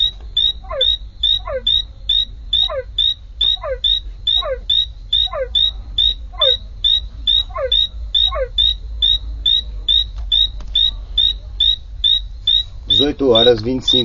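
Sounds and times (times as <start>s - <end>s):
Ameerega flavopicta spot-legged poison frog calling in high chirps: 0.0s - 14.0s
speech: 13.0s - 14.0s.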